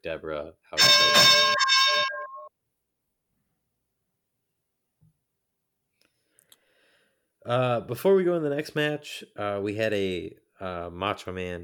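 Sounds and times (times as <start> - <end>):
speech: 0.0 - 2.2, 7.4 - 11.6
bell ringing: 0.8 - 2.5.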